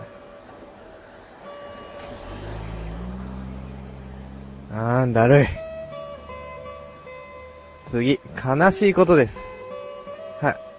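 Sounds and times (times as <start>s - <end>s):
taxi engine rumble and road noise driving past outdoors: 0.0s - 8.1s
speech: 4.7s - 5.6s, 7.9s - 9.6s, 10.4s - 10.6s.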